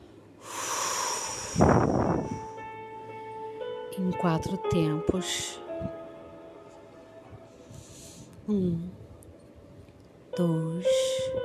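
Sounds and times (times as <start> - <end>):
deep breath out during a guided breathing exercise: 0.4 - 2.6, 7.5 - 8.4
speech: 4.1 - 6.0, 8.5 - 9.0, 10.4 - 11.0.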